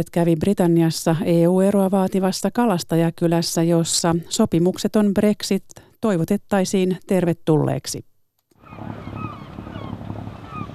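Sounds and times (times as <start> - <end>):
speech: 0.0 - 8.1, 8.7 - 9.2
boat engines humming in the fishing harbour at Whitby: 8.6 - 10.7.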